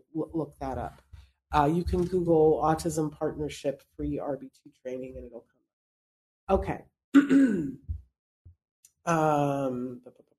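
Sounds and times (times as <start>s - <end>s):
speech: 0.2s - 5.6s, 6.5s - 8.0s, 9.0s - 10.2s
person clearing throat: 7.2s - 7.8s.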